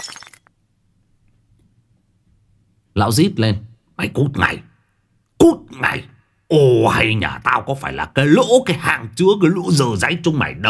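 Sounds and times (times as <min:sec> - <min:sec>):
porcelain tea cup thrown and shattering: 0:00.0 - 0:00.5
speech: 0:03.0 - 0:04.7, 0:05.4 - 0:10.6.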